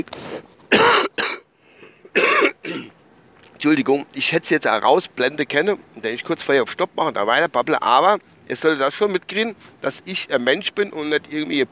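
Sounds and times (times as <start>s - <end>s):
speech: 0.0s - 1.0s, 3.6s - 11.7s
dry irritated coughing: 0.7s - 2.9s.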